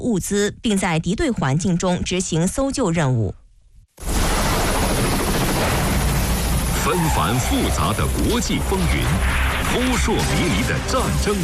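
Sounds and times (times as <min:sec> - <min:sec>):
speech: 0:00.1 - 0:03.4, 0:06.9 - 0:11.4
UH-60M Black Hawk helicopter flying: 0:04.0 - 0:11.4.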